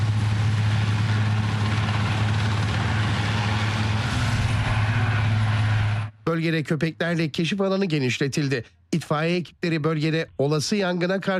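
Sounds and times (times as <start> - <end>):
rescue helicopter engine and rotor hum: 0.0 - 6.2
speech: 6.3 - 11.3.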